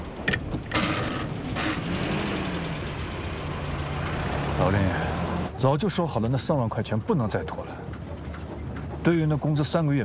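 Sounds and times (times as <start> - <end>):
car engine rumbling while setting off: 0.0 - 5.6
speech: 4.6 - 7.9, 9.0 - 10.0.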